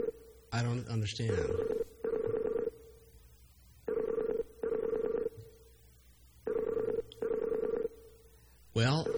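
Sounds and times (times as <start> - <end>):
speech: 0.5 - 1.7
Skype outgoing call ringing tone: 1.3 - 2.8, 3.9 - 5.4, 6.4 - 8.1, 8.8 - 9.1.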